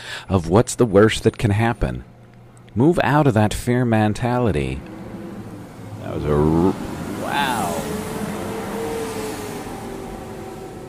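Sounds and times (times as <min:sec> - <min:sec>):
speech: 0:00.3 - 0:02.1, 0:02.8 - 0:05.0, 0:06.0 - 0:07.5
loud vehicles passing outside a house: 0:03.8 - 0:10.8.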